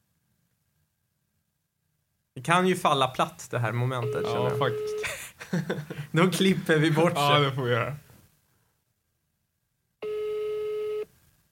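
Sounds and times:
speech: 2.4s - 8.0s
telephone ringing tone of an unanswered call: 4.0s - 5.0s, 10.0s - 11.1s
laughter: 4.0s - 7.7s.

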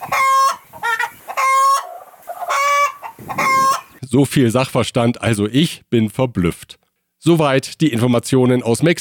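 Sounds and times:
chickens squawking and clucking: 0.0s - 4.0s
speech: 4.1s - 9.0s.

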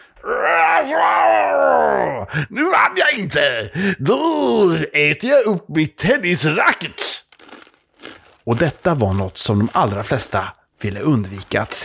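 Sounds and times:
person imitating a monster's scream: 0.2s - 2.4s
speech: 0.2s - 7.2s, 8.5s - 11.8s.

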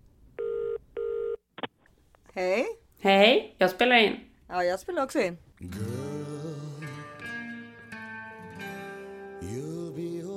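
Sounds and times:
electronic tones of a telephone call being placed: 0.4s - 1.4s
speech: 2.4s - 5.9s.

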